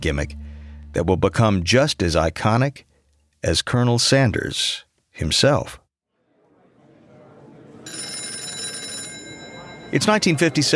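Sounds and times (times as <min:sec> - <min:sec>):
speech: 0:00.0 - 0:05.8, 0:09.9 - 0:10.7
office telephone bell ringing: 0:07.8 - 0:10.7.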